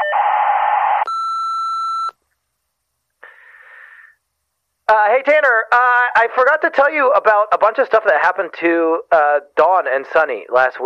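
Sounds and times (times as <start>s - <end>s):
voicemail answering machine beep: 1.1s - 2.2s
speech: 4.9s - 10.8s.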